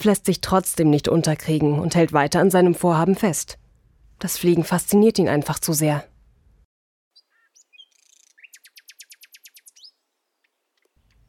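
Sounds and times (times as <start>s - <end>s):
speech: 0.0s - 3.6s, 4.2s - 6.1s
birds chirping outdoors: 7.2s - 11.2s.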